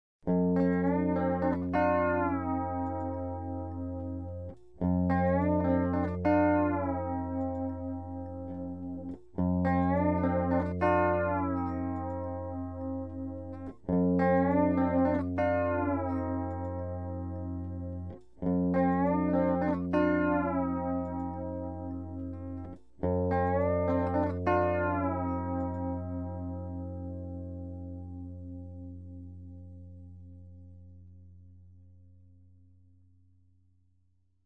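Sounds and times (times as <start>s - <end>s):
steel guitar riff: 0.3s - 31.0s.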